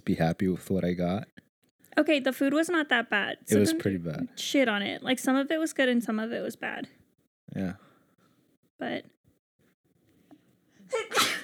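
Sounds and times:
speech: 0.1 - 1.4, 2.0 - 7.8, 8.8 - 9.1
person sneezing: 10.9 - 11.4.

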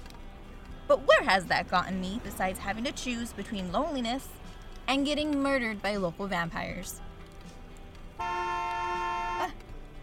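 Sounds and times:
speech: 0.9 - 7.1
car horn blast: 8.2 - 9.6.

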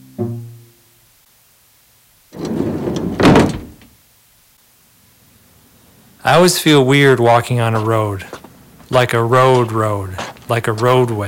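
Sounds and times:
van sliding door rumbling along its track and shutting: 2.3 - 3.9
speech: 6.2 - 11.2.

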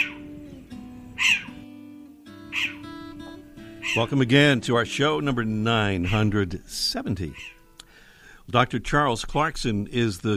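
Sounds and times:
short-eared owl yelping puppy-like calls: 0.0 - 1.6, 2.4 - 4.2, 6.0 - 6.3, 7.3 - 7.8
speech: 3.9 - 7.6, 8.5 - 10.3.

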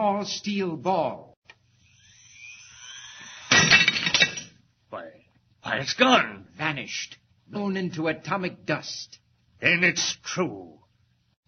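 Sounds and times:
speech: 0.0 - 1.3, 4.9 - 10.8
thin rising whine: 1.7 - 3.5
glass on the edge of a table shattering: 3.4 - 4.6
glass fragments crashing and tinkling: 3.5 - 4.5.

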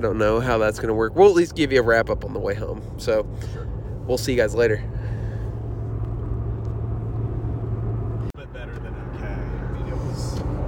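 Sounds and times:
speech: 0.0 - 5.0
truck interior road rumble while driving: 0.0 - 10.6
truck engine drone: 2.2 - 10.6.

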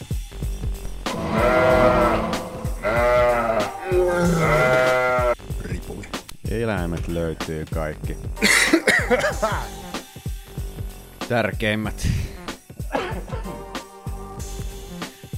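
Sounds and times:
sheep bleating: 1.1 - 5.4
speech: 6.5 - 9.8, 11.3 - 12.2
person coughing harshly: 8.4 - 9.6, 12.9 - 13.4.

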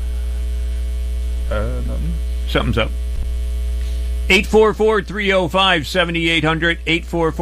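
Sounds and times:
electrical mains hum: 0.0 - 7.4
speech: 1.5 - 3.1, 4.3 - 7.4.

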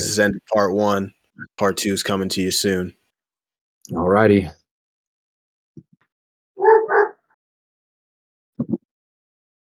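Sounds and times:
speech: 0.2 - 3.0, 3.9 - 4.6
dog barking: 6.6 - 7.4.

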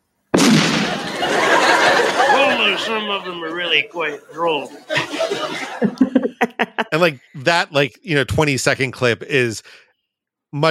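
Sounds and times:
loud explosion: 0.3 - 1.3
laughter: 0.9 - 7.9
speech: 2.8 - 9.8, 10.5 - 10.7.

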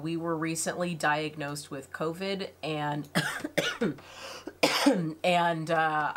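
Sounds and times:
speech: 0.0 - 6.1
person with a lingering cough after COVID coughing: 3.2 - 5.2.

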